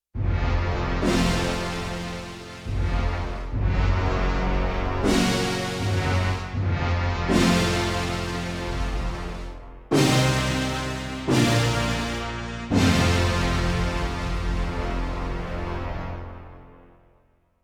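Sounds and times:
orchestral music on a sampler: 0:00.2 - 0:17.1.

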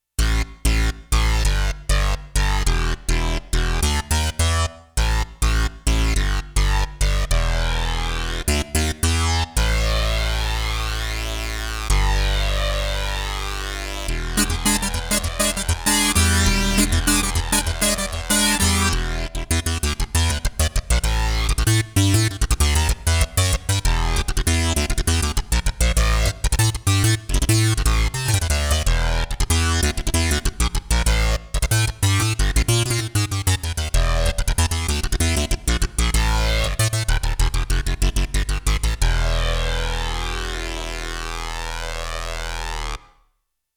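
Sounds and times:
synth bass on a Roland JX-1 factory preset: 0:00.2 - 0:43.0
sawtooth synth on a Roland JX-1 factory preset: 0:14.3 - 0:19.2.

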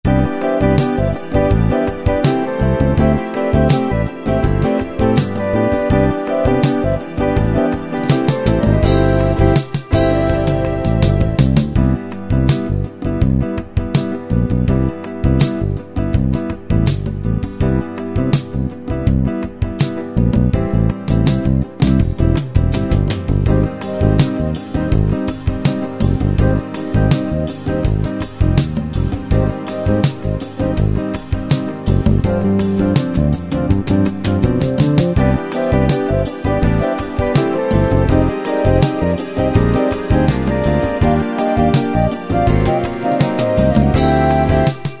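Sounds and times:
light fusion music preset style: 0:00.0 - 0:44.9.

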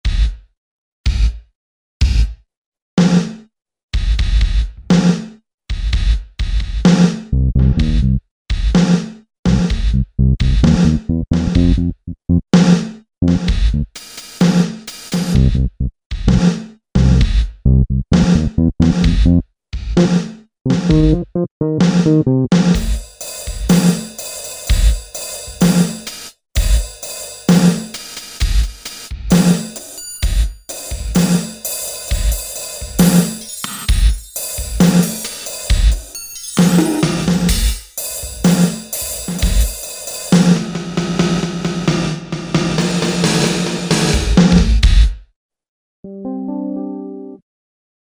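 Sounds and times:
drum: 0:00.1 - 0:00.4, 0:01.1 - 0:01.4, 0:02.0 - 0:02.4, 0:04.0 - 0:45.2
bass: 0:07.3 - 0:08.7, 0:09.5 - 0:14.0, 0:15.3 - 0:23.0.

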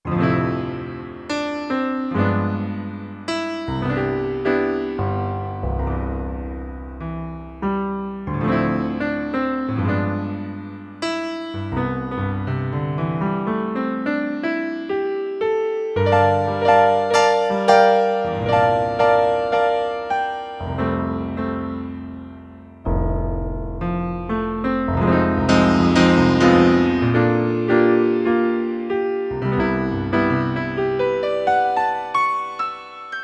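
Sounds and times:
Roland D-70 electric piano: 0:00.0 - 0:33.2.

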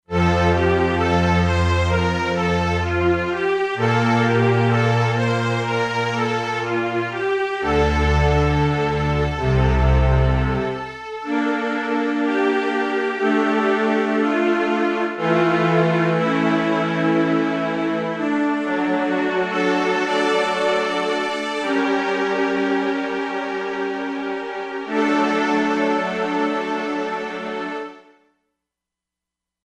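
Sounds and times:
legato strings from an E-mu Proteus-2 synthesizer factory preset: 0:00.1 - 0:27.9.

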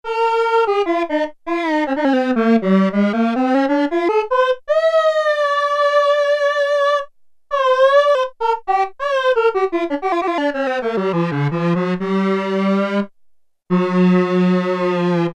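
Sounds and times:
Oberheim OB-8 saxophone factory patch: 0:00.1 - 0:15.3.

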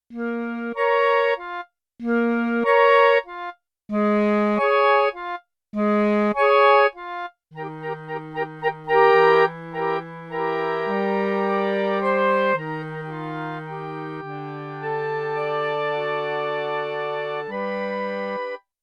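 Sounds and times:
ensemble of Bb clarinet and clarinet on a sampler: 0:00.1 - 0:18.6.

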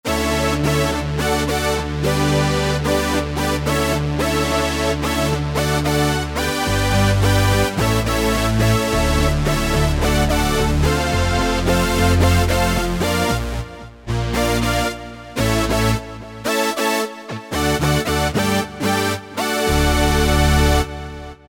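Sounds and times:
Roland JP-8000 synthesizer playing factory performances: 0:00.1 - 0:21.4.

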